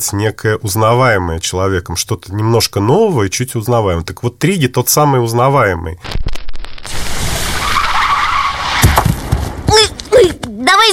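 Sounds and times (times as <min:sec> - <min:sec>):
speech: 0:00.0 - 0:06.3
short sharp car tire chirps: 0:06.9 - 0:10.1
car tires skidding as the car brakes hard: 0:07.0 - 0:09.7.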